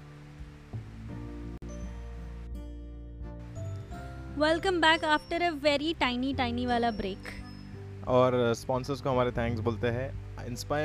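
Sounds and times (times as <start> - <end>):
rain falling outside: 0.0 - 1.6
speech: 4.4 - 7.4, 8.1 - 10.8.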